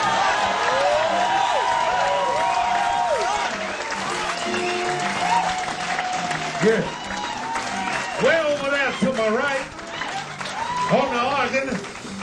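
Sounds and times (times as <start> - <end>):
cheering voices: 0.0 - 11.9
loud applause from a large crowd for a band: 0.0 - 12.2
speech: 6.6 - 7.0.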